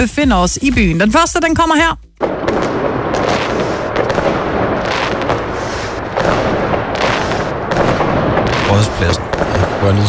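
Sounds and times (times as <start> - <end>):
speech: 0.0 - 2.7, 8.8 - 10.0
New Year's Eve fireworks in a city square: 2.2 - 10.0.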